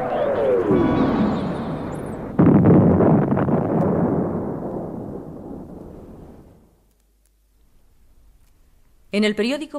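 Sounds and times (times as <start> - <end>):
roaring descending rush of a falling airship: 0.0 - 6.0
crash and explosion of an airship striking a windmill tower: 0.0 - 6.7
speech: 0.7 - 1.5, 9.2 - 9.7.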